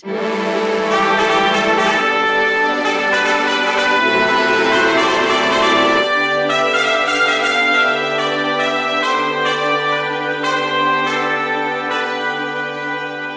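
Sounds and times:
dramatic music from an old radio drama: 0.0 - 13.3.

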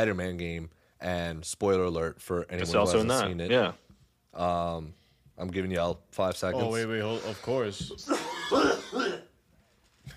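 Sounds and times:
speech: 0.0 - 3.8, 4.4 - 8.8
harsh coughs: 8.0 - 9.4.

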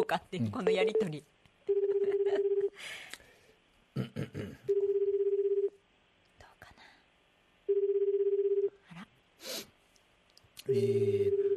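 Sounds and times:
speech: 0.1 - 1.4, 2.3 - 3.2, 10.7 - 11.5
phone ringback tone from a call to a mobile phone: 1.7 - 2.8, 4.7 - 5.8, 7.7 - 8.8, 10.7 - 11.5.

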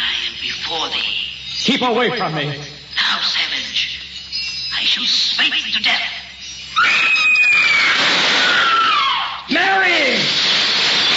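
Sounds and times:
speech: 0.7 - 3.4, 4.9 - 6.2, 6.8 - 8.2
loud piercing high-pitched scream: 6.8 - 11.1.

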